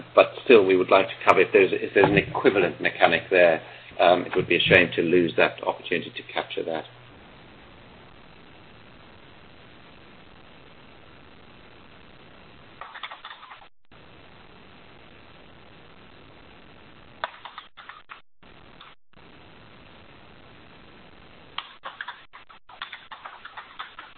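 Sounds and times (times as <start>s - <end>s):
thin hissy microphone hiss: 0.0s - 17.6s, 18.4s - 22.0s
speech: 0.2s - 7.0s
computer keyboard typing: 12.8s - 13.6s, 17.2s - 18.2s, 21.6s - 24.1s.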